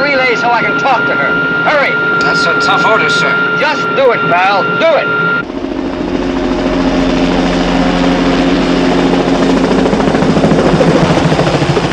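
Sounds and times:
helicopter rotor and engine drone above a road: 0:00.0 - 0:11.9
speech: 0:00.4 - 0:05.6.

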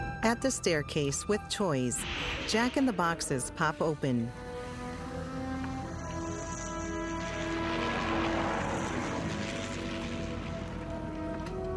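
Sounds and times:
speech: 0:00.2 - 0:04.5
descending model airplanes propeller buzz: 0:02.8 - 0:11.7.

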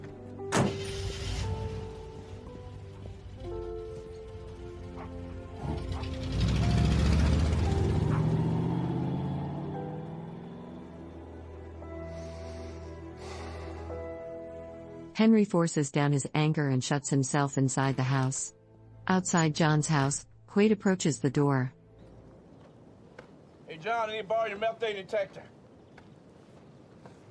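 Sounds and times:
lifted pickup truck door thumping shut: 0:00.5 - 0:00.8
lifted pickup truck engine roaring as the truck drives off: 0:00.6 - 0:14.1
speech: 0:15.2 - 0:21.8, 0:23.8 - 0:25.6.

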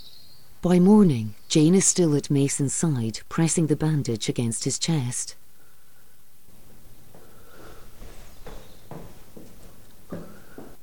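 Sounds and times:
speech: 0:00.6 - 0:05.4
shuffling footsteps on a floor: 0:06.5 - 0:10.8.

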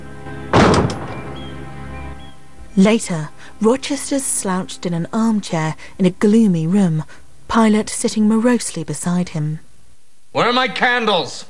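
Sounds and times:
door closing: 0:00.5 - 0:01.6
speech: 0:02.8 - 0:09.6, 0:10.3 - 0:11.4.

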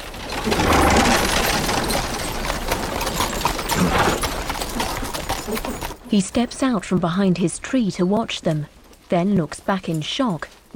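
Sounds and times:
rolling wheels of a carriage laden with chests: 0:00.0 - 0:06.0
horse hooves clattering through a forest: 0:00.0 - 0:10.7
speech: 0:00.4 - 0:00.8, 0:06.1 - 0:10.7.

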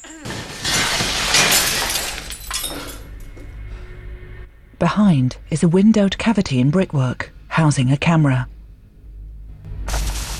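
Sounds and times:
glass two-way mirror shattering from thrown debris: 0:00.3 - 0:03.3
speech: 0:04.8 - 0:08.5.

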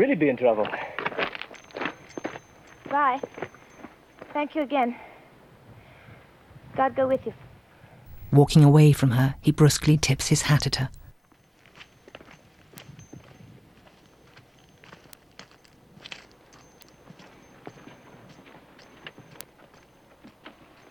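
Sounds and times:
speech: 0:00.0 - 0:01.3, 0:02.9 - 0:03.6, 0:04.4 - 0:05.1, 0:06.8 - 0:07.4, 0:08.3 - 0:11.0
mule hooves clip-clopping as it is led up a bank: 0:00.5 - 0:04.9, 0:11.3 - 0:20.8.

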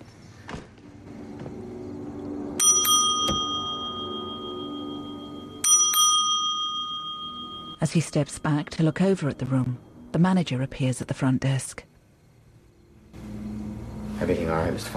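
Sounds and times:
low steady hum: 0:00.0 - 0:14.9
bell rung on a motel front desk: 0:02.6 - 0:10.0
speech: 0:07.8 - 0:11.9, 0:14.2 - 0:14.9.

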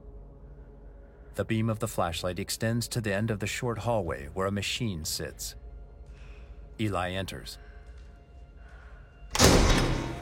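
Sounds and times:
speech: 0:01.4 - 0:05.6, 0:06.8 - 0:07.6
metal doors closing: 0:09.3 - 0:10.2.

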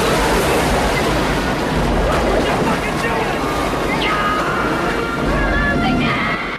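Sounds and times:
whitewater rapids roaring over a waterfall: 0:00.0 - 0:06.5.

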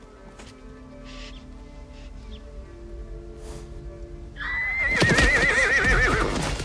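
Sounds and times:
horse neighing as it rears up: 0:04.4 - 0:06.5.

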